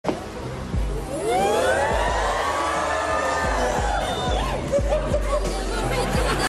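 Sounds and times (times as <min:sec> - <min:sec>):
studio audience cheering woo: 0:01.2 - 0:04.6
laughter: 0:03.4 - 0:06.4.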